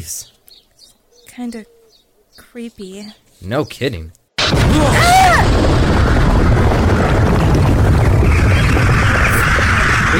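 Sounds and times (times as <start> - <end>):
speech: 0.0 - 0.4, 1.4 - 1.8, 2.4 - 5.7
heavy explosion with deep sustained rumble: 4.4 - 10.1.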